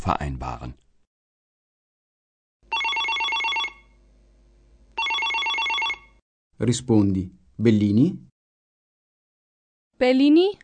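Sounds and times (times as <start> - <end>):
speech: 0.0 - 0.8, 6.6 - 8.3, 10.0 - 10.6
telephone ringing with an incoming call: 2.7 - 4.0, 5.0 - 6.2.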